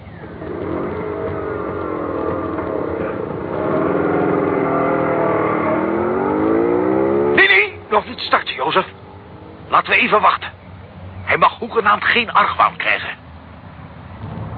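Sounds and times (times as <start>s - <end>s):
scooter engine starting and revving: 0.0s - 9.8s
speech: 9.9s - 10.5s, 11.7s - 13.1s.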